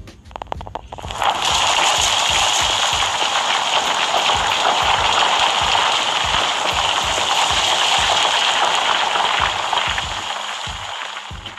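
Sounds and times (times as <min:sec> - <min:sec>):
heavy rain pouring: 0:00.4 - 0:11.5.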